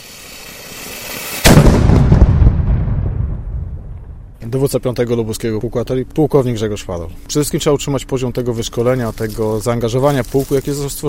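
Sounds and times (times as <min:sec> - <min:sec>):
cannon salute shot from replica cannon: 0:01.4 - 0:04.4
rumbling echo of cannon shot across open air: 0:01.5 - 0:04.7
speech: 0:04.5 - 0:11.0.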